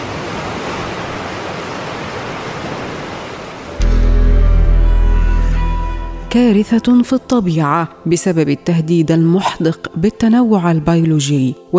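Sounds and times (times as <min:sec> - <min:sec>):
sea waves and churning water roaring: 0:00.0 - 0:06.2
speech: 0:06.3 - 0:11.7.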